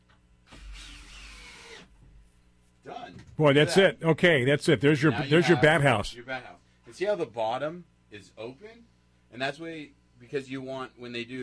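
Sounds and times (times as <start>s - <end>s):
electric drill driving a screw into pre-drilled wood while assembling a bat house: 0.4s - 2.0s
speech: 2.8s - 11.4s.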